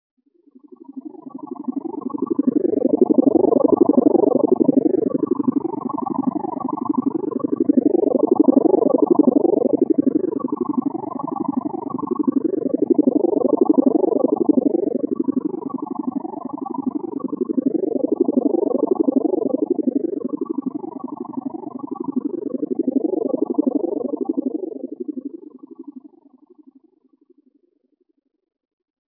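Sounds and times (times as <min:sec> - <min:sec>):
hovering UFO: 0:00.8 - 0:25.8.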